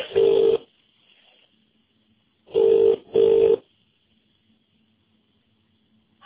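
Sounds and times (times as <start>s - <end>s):
telephone line ringing tone: 0.0s - 0.7s, 2.5s - 3.7s.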